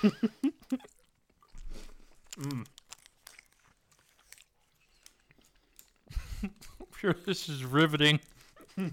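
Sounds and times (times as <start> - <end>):
speech: 0.0 - 0.5, 7.0 - 8.9
wet smacking and chewing of a soft watermelon-flavoured snack: 0.6 - 7.0.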